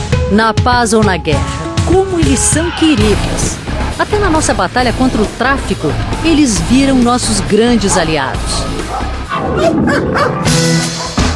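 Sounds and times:
speech: 0.3s - 11.0s
chocolate labrador police dog barking and whining: 7.8s - 11.3s.

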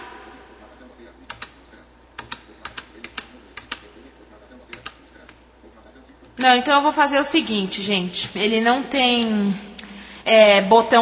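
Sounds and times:
computer keyboard Enter and Tab keys pressed: 1.3s - 1.6s, 2.2s - 3.9s, 4.7s - 5.0s
speech: 6.4s - 9.7s, 10.3s - 10.9s.

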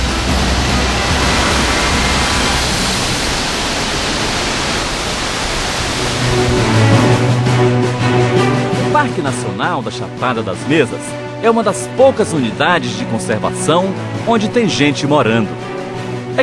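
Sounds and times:
Cachoeiras da Prata waterfalls roaring in Chapada das Mesas National Park: 0.0s - 9.3s
speech: 9.1s - 15.7s.

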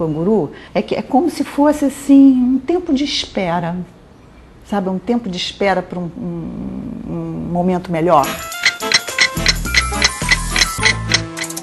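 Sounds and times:
speech: 0.0s - 4.0s, 4.7s - 8.5s
old clock ticking in a family home's living room: 8.4s - 11.6s.

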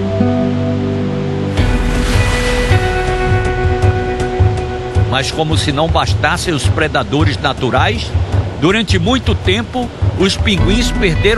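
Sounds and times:
soft sustained musical tone: 0.0s - 5.5s
ocean waves breaking: 0.0s - 11.3s
speech: 5.2s - 11.3s.

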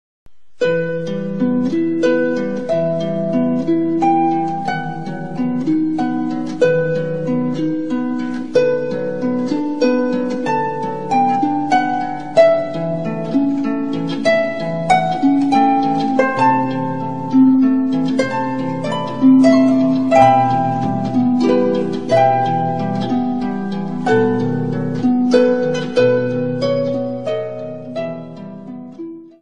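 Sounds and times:
lyre playing: 0.3s - 29.4s.

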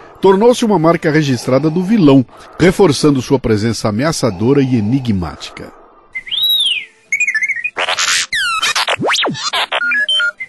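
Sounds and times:
speech: 0.2s - 5.8s
robot droid electronic beeps, whistles and warbling chirps: 6.2s - 10.4s.

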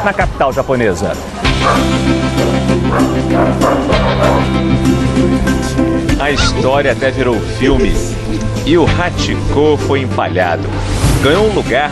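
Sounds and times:
speech: 0.0s - 11.8s
Japanese Akita dog barking and yipping: 1.3s - 4.6s, 6.3s - 6.7s.

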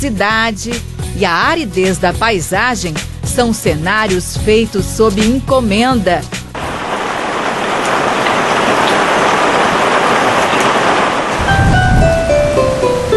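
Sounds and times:
speech: 0.0s - 6.4s
steady dense rain pouring: 6.5s - 13.1s.

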